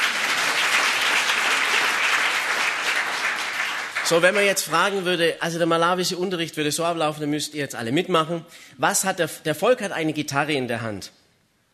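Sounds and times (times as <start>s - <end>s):
crowd applauding: 0.0s - 5.0s
speech: 4.1s - 11.2s.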